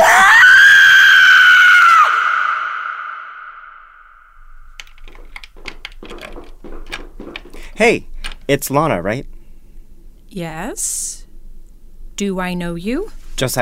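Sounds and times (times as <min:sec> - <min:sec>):
woman screaming: 0:00.0 - 0:03.8
speech: 0:07.8 - 0:09.3, 0:10.3 - 0:11.2, 0:12.2 - 0:13.6.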